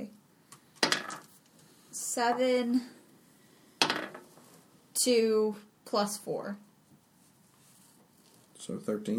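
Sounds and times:
damage dice clattering across a hard table: 0.8s - 1.4s, 3.8s - 4.4s
speech: 2.2s - 3.0s, 5.0s - 6.7s, 8.7s - 9.1s.

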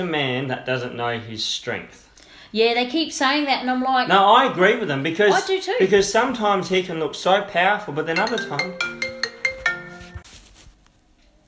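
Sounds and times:
speech: 0.0s - 9.0s
phone ringtone for an incoming call: 8.2s - 10.3s.

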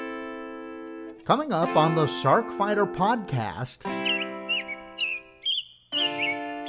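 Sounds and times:
speech: 1.3s - 4.2s
birds chirping in a backyard: 3.9s - 6.6s.

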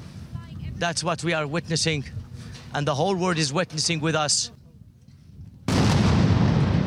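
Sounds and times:
speech: 0.8s - 4.6s
missile strike exploding and hitting a building in a warplane attack: 5.7s - 6.8s.

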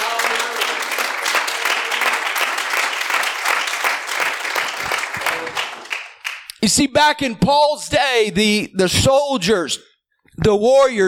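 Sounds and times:
audience clapping hands: 0.0s - 6.7s
speech: 6.6s - 11.0s.

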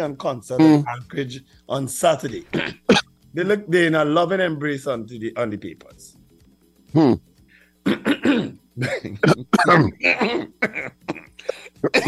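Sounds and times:
speech: 0.0s - 6.1s, 6.9s - 11.2s, 11.8s - 12.0s
rough coughs: 2.3s - 3.1s, 6.9s - 7.2s, 7.8s - 12.0s
throat clearing: 2.4s - 3.1s, 6.9s - 7.2s, 7.8s - 12.0s.

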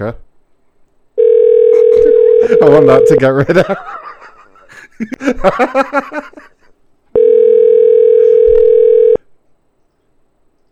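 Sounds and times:
speech: 0.0s - 0.2s, 2.5s - 4.0s, 5.0s - 6.5s
steady flat telephone beep of a call prompt tone: 1.2s - 3.2s, 7.2s - 9.2s
laughter: 2.4s - 6.7s.

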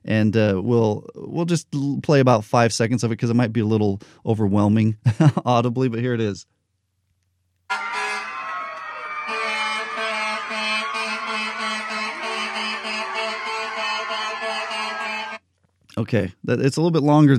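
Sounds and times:
speech: 0.1s - 6.5s, 16.0s - 17.3s
fire truck sirens and horns: 7.7s - 15.4s
large crowd cheering for medical professionals: 7.7s - 15.4s
laughter: 7.7s - 15.4s.

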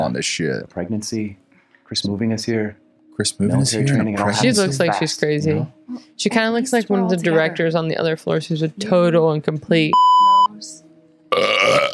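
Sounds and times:
speech: 0.0s - 10.8s
loud rough burp: 11.3s - 11.9s.

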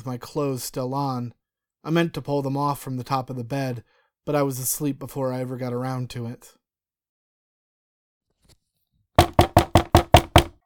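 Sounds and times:
speech: 0.0s - 6.6s
firm knocking on a door: 9.2s - 10.6s.

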